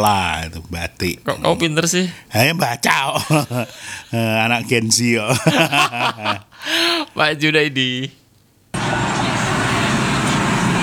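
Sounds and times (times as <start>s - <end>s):
speech: 0.0s - 8.2s
laughter: 2.9s - 7.2s
diesel light truck roaring on the road: 8.8s - 10.8s.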